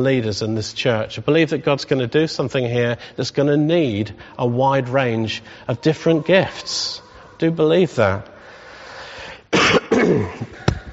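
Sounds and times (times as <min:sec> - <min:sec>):
speech: 0:00.0 - 0:08.3
person with a cold coughing: 0:09.5 - 0:10.8.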